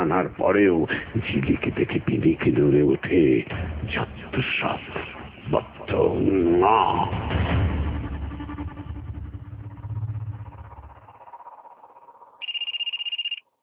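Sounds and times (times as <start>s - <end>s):
speech: 0.0s - 7.4s
rumbling engine-like noise: 0.0s - 13.4s
telephone ringing with electronic trill: 12.4s - 13.4s.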